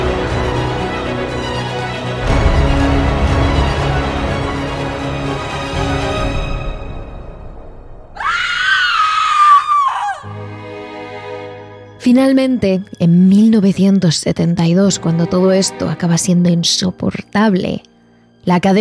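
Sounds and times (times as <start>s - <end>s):
dark droning musical bed: 0.0s - 18.7s
shrill scream: 8.2s - 10.3s
speech: 12.1s - 18.7s.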